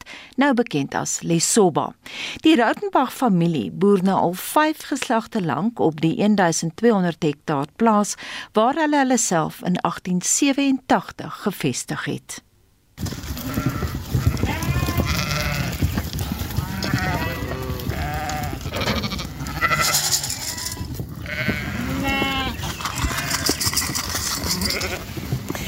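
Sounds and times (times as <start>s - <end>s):
speech: 0.4s - 13.7s
busy rustling: 13.0s - 25.6s
sheep hooves shuffling: 13.0s - 25.6s
large flock of sheep in a farm kraal bleating at feeding time: 13.4s - 23.8s, 24.4s - 25.1s.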